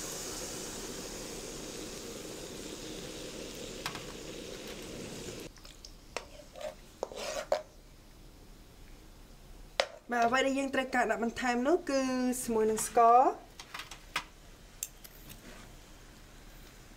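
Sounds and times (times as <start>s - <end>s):
stirring hot coconut cream with salt and sugar in a pot: 6.2s - 7.8s
speech: 10.1s - 13.4s.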